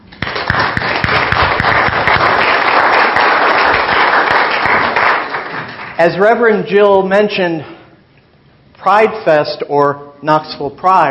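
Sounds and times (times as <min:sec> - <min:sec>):
crowd applauding: 0:00.1 - 0:06.0
speech: 0:06.0 - 0:07.7, 0:08.8 - 0:11.1.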